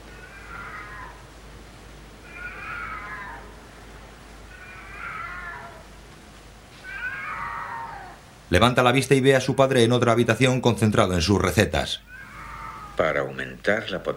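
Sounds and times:
cat meowing: 0.0s - 1.2s, 2.2s - 3.6s, 4.5s - 5.9s, 6.7s - 8.2s, 12.1s - 13.1s
speech: 8.5s - 12.2s, 13.0s - 14.1s.

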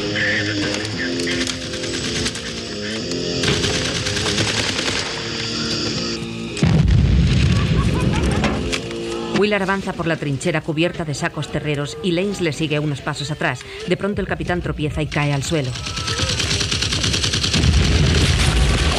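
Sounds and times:
laughter: 0.0s - 3.0s, 7.3s - 9.3s
rapid machine-gun fire in a war trench: 1.4s - 2.6s, 3.4s - 5.3s, 15.5s - 18.9s
heavy low boom: 6.6s - 8.2s
explosions in a war trench: 6.6s - 8.6s, 17.4s - 18.9s
speech: 9.5s - 16.2s.

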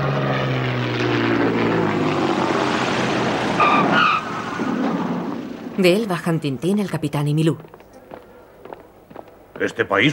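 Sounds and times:
passenger airplane engine roar landing at an airport: 0.0s - 5.8s
speech: 5.8s - 7.8s, 9.6s - 10.1s.

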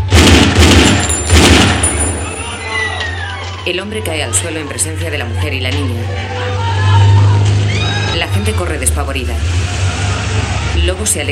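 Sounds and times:
pistol shot fired at point-blank range in a town square: 0.0s - 2.6s
dense noise: 0.0s - 11.3s
speech: 3.6s - 6.6s, 8.4s - 9.8s, 10.4s - 11.3s.

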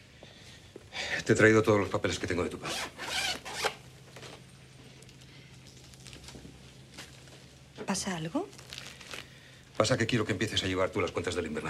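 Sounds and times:
speech: 1.2s - 3.4s, 7.9s - 8.6s, 9.8s - 11.6s
bag zipper being pulled open: 2.7s - 3.8s.

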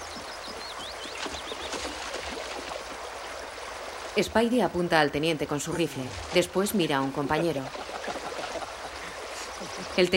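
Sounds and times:
birds chirping: 0.0s - 2.8s, 5.6s - 10.1s
soldier wading across a river: 0.0s - 4.2s, 5.7s - 10.0s
speech: 4.2s - 7.9s, 10.0s - 10.1s.

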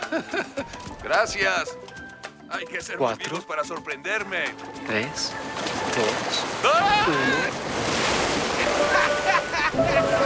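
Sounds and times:
laughter: 0.0s - 0.8s, 8.5s - 10.2s
speech: 0.1s - 1.8s, 2.5s - 8.0s, 8.9s - 10.2s
ocean wave crashing onto the beach: 4.6s - 10.2s.

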